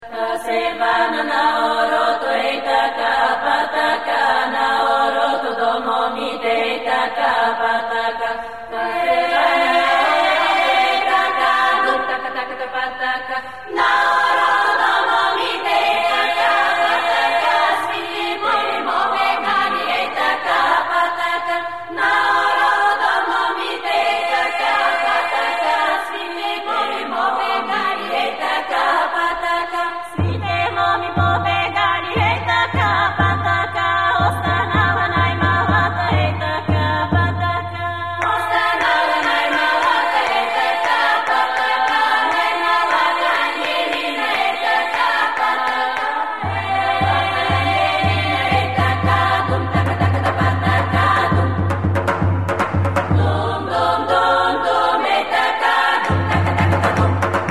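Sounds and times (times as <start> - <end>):
Bulgarian polyphonic choir singing: 0.0 - 57.4.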